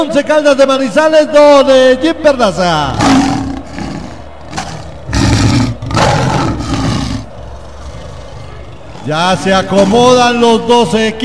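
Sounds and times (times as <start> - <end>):
speech: 0.0 - 3.3, 9.0 - 11.2
lion roaring: 2.9 - 10.7.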